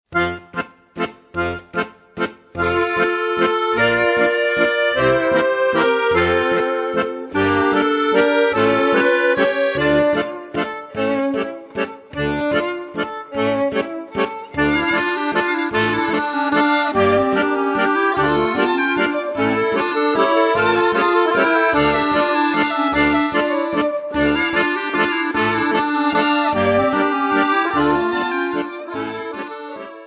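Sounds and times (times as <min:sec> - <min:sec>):
accordion from Israel: 0:00.1 - 0:30.0.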